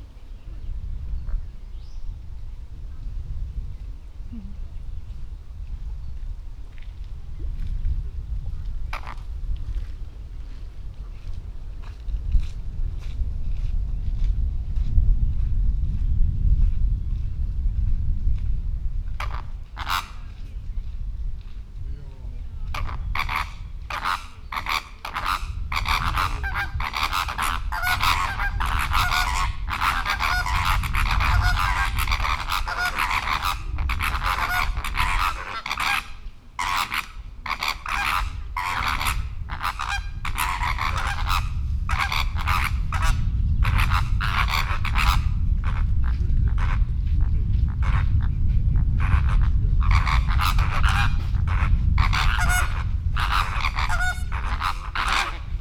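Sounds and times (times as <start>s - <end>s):
wind: 0.0s - 55.6s
greater flamingo and Chilean flamingo calling: 19.2s - 20.3s, 22.5s - 45.8s, 49.0s - 55.6s.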